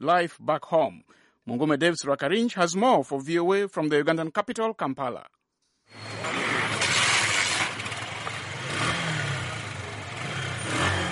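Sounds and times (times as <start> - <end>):
speech: 0.0 - 6.2
motorbike taxi engine revving at a busy outdoor market: 5.9 - 11.0.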